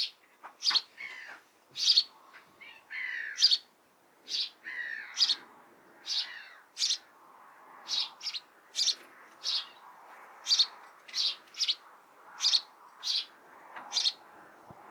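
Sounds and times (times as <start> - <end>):
house sparrow chirping: 0.0 - 2.2, 2.9 - 3.7, 4.3 - 5.4, 6.0 - 7.1, 7.9 - 9.8, 10.4 - 11.8, 12.4 - 14.2.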